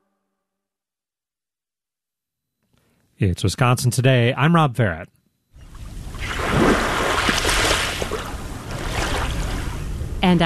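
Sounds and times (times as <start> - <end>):
speech: 3.2 - 5.2, 10.2 - 10.4
waves washing onto a sandy Lake Michigan beach in Shorewood: 6.2 - 9.9.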